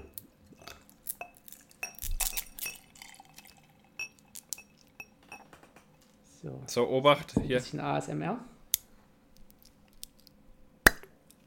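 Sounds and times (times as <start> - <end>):
ice clinking and cracking against glass: 1.1 - 5.1
gin poured over ice cubes in a glass: 2.0 - 4.4
speech: 6.4 - 8.5.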